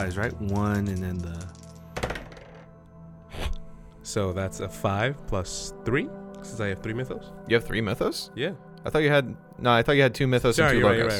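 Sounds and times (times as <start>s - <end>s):
speech: 0.0s - 1.6s, 4.0s - 11.1s
two dice clattering across a hard tabletop: 0.3s - 2.7s.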